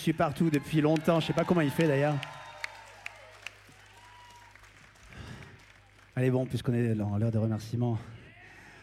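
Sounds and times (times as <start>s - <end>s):
speech: 0.0s - 2.4s, 6.2s - 8.2s
concert audience cheering: 0.0s - 6.7s
concert audience applauding: 0.0s - 6.8s.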